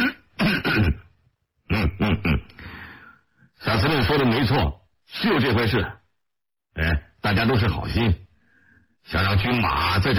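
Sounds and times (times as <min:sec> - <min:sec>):
man clearing his throat: 0:00.0 - 0:02.6
speech: 0:04.1 - 0:06.0, 0:06.8 - 0:08.2, 0:09.0 - 0:10.1.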